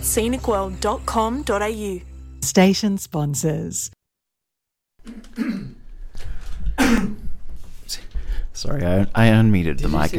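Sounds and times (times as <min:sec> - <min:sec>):
speech: 0:00.0 - 0:04.0, 0:05.0 - 0:05.7, 0:08.6 - 0:10.1
person coughing harshly: 0:05.1 - 0:05.8, 0:06.8 - 0:07.3.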